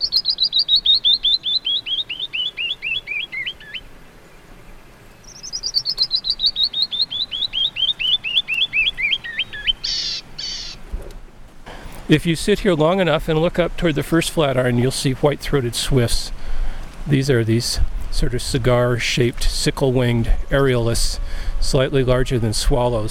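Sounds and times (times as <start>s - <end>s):
canyon wren song on tape recording: 0.0s - 3.9s, 5.2s - 10.8s
speech: 12.1s - 16.4s, 17.1s - 23.0s.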